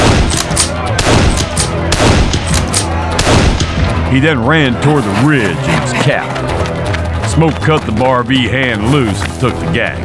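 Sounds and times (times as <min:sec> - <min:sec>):
rifle fired repeatedly into the back of a house: 0:00.0 - 0:04.0
speech: 0:04.1 - 0:06.5, 0:07.4 - 0:10.0.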